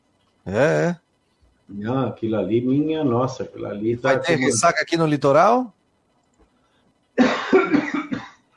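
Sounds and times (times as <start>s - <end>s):
speech: 0.4s - 1.0s, 2.2s - 5.8s
person coughing: 7.2s - 8.4s.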